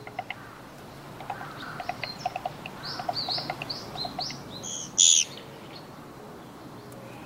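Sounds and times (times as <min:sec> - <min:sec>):
Japanese pygmy woodpecker calls: 0:00.0 - 0:05.4
faint outdoor hiss: 0:00.0 - 0:07.2
several small birds chirping: 0:00.0 - 0:07.2.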